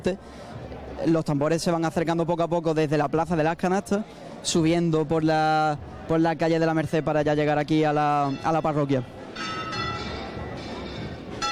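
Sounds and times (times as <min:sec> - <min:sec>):
busy outdoor murmur of crowd noise: 0:00.0 - 0:01.2, 0:02.7 - 0:11.5
speech: 0:00.0 - 0:09.6
church bells ringing: 0:08.2 - 0:11.5.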